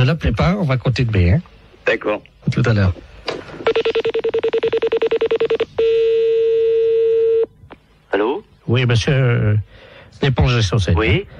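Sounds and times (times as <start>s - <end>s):
speech: 0.0s - 4.0s, 8.1s - 11.3s
continuous unbroken telephone tone: 3.6s - 8.4s
telephone number being dialed beeps: 3.7s - 7.5s.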